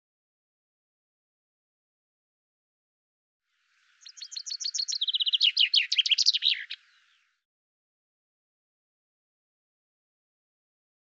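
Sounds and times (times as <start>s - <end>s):
common chaffinch song: 3.5s - 7.4s.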